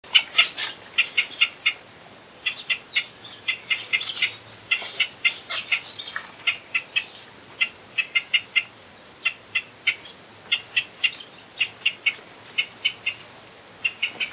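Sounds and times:
Pinto's spinetail calling: 0.0s - 14.3s.

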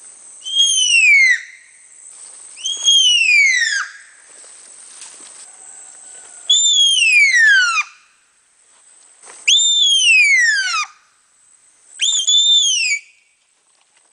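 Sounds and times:
faint steady hiss: 0.0s - 14.1s
Baird's tapir whistling squeals: 0.4s - 1.6s, 2.6s - 4.0s, 6.4s - 8.0s, 9.5s - 10.9s, 12.0s - 13.2s.

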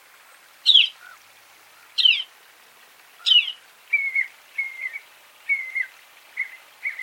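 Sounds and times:
Northern mockingbird song: 0.6s - 1.2s, 1.9s - 2.3s, 3.2s - 7.0s.

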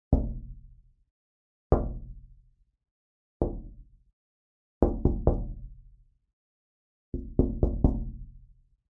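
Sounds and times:
knock on window: 0.1s - 0.4s, 3.4s - 3.7s, 4.8s - 5.5s, 7.2s - 8.2s.

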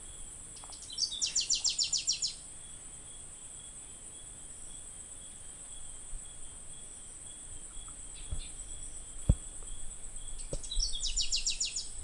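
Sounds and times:
variable sunbird calling: 0.0s - 2.8s, 5.3s - 12.0s.

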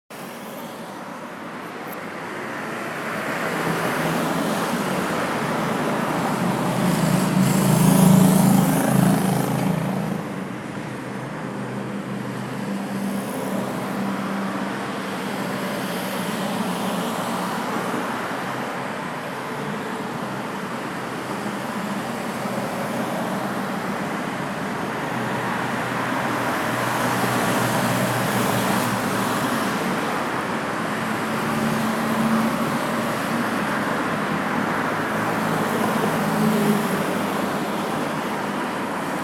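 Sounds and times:
quiet highway traffic: 0.1s - 39.2s.

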